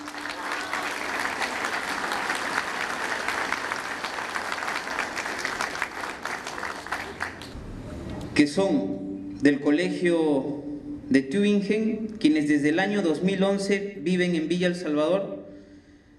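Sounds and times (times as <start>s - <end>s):
dense applause from a sizable audience: 0.0s - 7.6s
speech: 8.4s - 15.3s.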